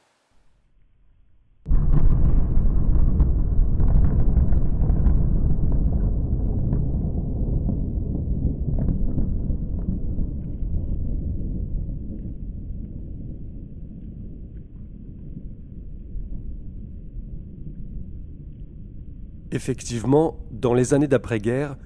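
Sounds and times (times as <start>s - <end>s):
atomic bomb explosion blast and deep rumble: 1.7s - 14.5s
speech: 19.6s - 21.8s.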